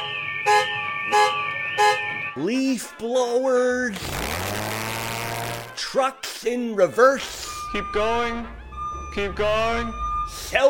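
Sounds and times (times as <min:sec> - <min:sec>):
car alarm blaring with steady high electronic tones: 0:00.0 - 0:03.0, 0:07.2 - 0:10.6
speech: 0:02.4 - 0:04.4, 0:05.9 - 0:10.6.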